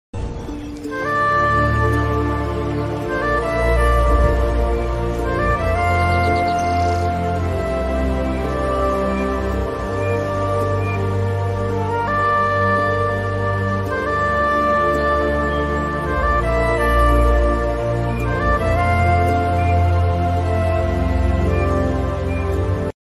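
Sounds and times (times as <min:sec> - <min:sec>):
flute music: 0:00.2 - 0:23.0.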